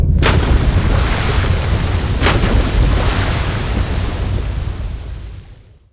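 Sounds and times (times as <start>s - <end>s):
sea surface by a city: 0.1s - 5.9s.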